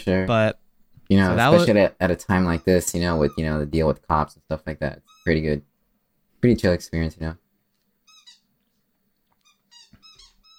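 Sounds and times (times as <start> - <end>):
speech: 0.0 - 5.7, 6.4 - 7.4
rubber squeaky toy squeaking while chewed: 2.4 - 3.6, 5.0 - 5.4, 8.1 - 8.5, 9.4 - 10.5.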